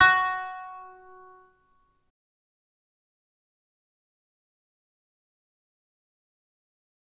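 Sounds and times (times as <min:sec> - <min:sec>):
kanun playing: 0:00.0 - 0:01.2.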